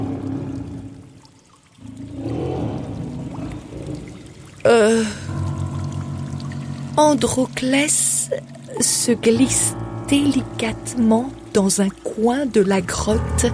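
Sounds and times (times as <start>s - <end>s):
water pouring and trickling: 0.0s - 13.5s
animal roar inside a cave: 1.8s - 4.4s
speech: 4.6s - 5.3s, 7.0s - 13.5s.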